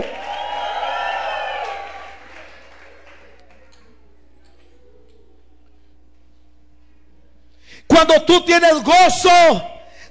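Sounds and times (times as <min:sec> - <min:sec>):
church audience applauding: 0:00.0 - 0:04.0
church audience cheering and whooping: 0:00.0 - 0:05.5
speech: 0:08.0 - 0:09.7.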